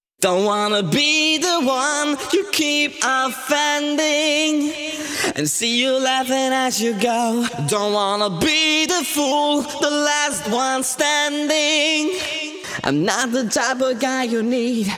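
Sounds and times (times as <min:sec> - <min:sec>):
pitched vocals with wet effects: 0:00.2 - 0:14.9.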